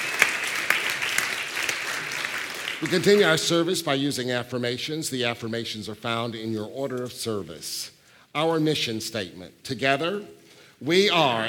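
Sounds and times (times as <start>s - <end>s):
sharp individual claps: 0.0s - 3.4s
congregation applauding during a service: 0.0s - 3.8s
speech: 2.8s - 11.4s.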